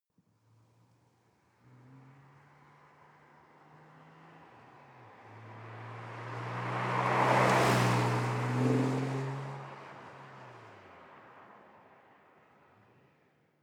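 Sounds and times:
sports car passing by at medium speed: 1.6s - 11.5s.

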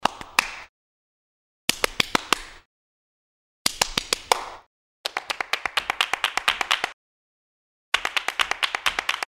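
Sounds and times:
hand claps: 0.0s - 0.7s, 1.7s - 2.7s, 3.7s - 7.0s, 8.0s - 9.2s.

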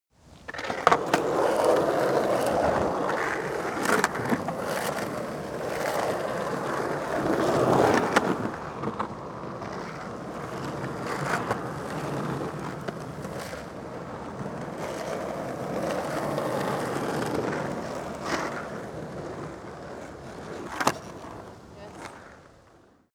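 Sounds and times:
skateboard driving in multiple sequences: 0.2s - 23.1s.

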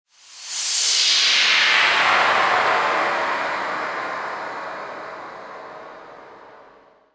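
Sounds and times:
high long swoosh: 0.2s - 7.0s.

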